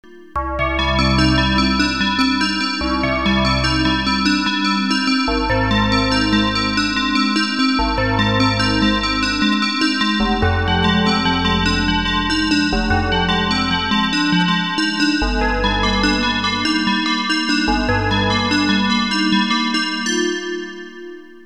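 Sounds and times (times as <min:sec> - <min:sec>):
bells: 0:00.0 - 0:21.4.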